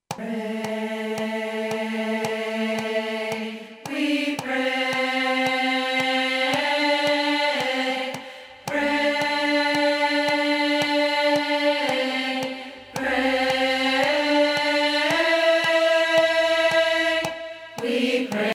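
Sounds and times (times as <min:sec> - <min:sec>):
tenor singing a prayer for peace: 0:00.1 - 0:18.5.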